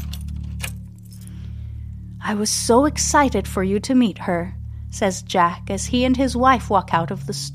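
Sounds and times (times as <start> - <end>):
keys jangling to unlock a display case in a store: 0.0 - 1.3
low hum: 0.0 - 7.5
speech: 2.2 - 7.5.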